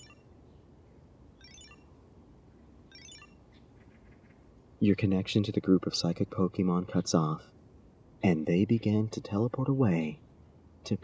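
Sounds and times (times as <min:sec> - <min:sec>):
bright trilling ringing from a communicator in a backpack: 0:01.4 - 0:01.9, 0:02.9 - 0:03.4
speech: 0:04.8 - 0:07.6, 0:08.2 - 0:10.2, 0:10.8 - 0:11.0.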